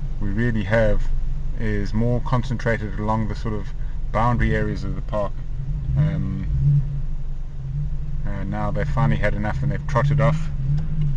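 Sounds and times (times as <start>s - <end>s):
speech: 0.4s - 6.9s, 8.4s - 11.1s
cars driving past on a road through the centre of a wildlife park: 4.4s - 11.1s.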